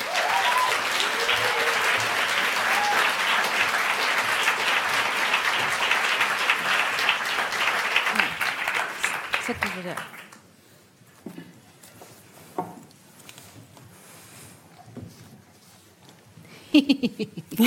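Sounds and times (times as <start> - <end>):
faint voices or cheers: 0.0 - 3.5
audience applause from a sizable crowd: 0.0 - 10.4.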